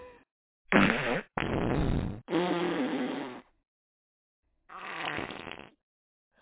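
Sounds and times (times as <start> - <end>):
farting: 0.7 - 3.5, 4.7 - 5.8.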